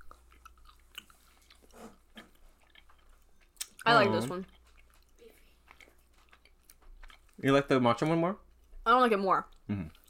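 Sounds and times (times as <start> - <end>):
chewing a snack: 0.0 - 7.4, 9.5 - 10.0
speech: 3.9 - 4.6, 7.4 - 10.0.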